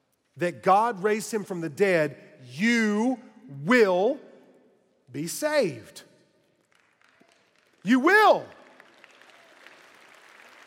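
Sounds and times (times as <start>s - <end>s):
speech: 0.4s - 4.3s, 5.1s - 6.1s, 7.8s - 8.6s
spontaneous audience applause during a sermon: 6.7s - 10.6s.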